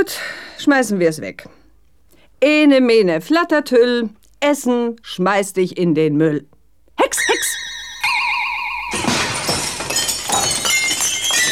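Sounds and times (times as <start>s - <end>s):
speech: 0.0s - 1.6s, 2.4s - 7.1s
wavering warbling whistle tone: 7.2s - 9.0s
window glass shattering: 8.0s - 11.5s
scattered tinkling glass fragments: 8.9s - 11.5s.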